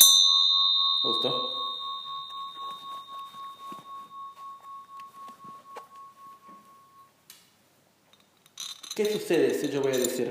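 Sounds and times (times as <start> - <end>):
single bell struck and ringing: 0.0 - 7.1
speech: 1.0 - 1.6, 9.0 - 10.3.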